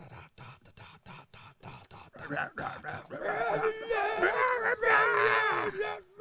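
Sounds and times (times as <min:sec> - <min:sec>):
choppy vocal bursts: 0:00.0 - 0:06.1
person screaming into a microphone: 0:03.2 - 0:06.1.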